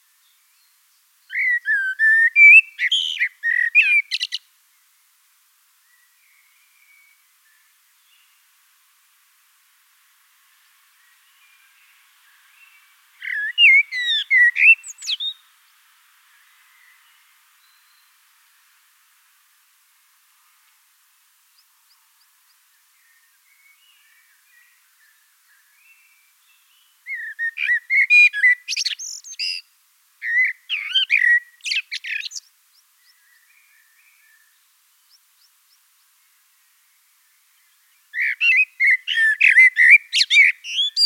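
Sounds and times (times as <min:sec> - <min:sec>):
blackbird singing in Wiesloch: 0:00.6 - 0:04.5, 0:11.0 - 0:15.5, 0:22.5 - 0:35.8, 0:37.4 - 0:41.0.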